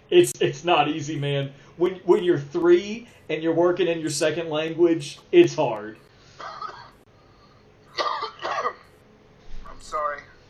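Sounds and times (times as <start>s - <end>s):
speech: 0.1s - 6.5s
person coughing: 6.4s - 7.0s, 7.9s - 8.9s.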